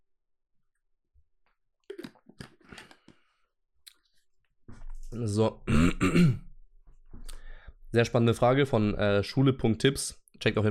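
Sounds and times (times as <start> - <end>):
slurping and swallowing while sipping a drink: 1.9 - 3.1
speech: 5.1 - 6.4, 7.9 - 10.7.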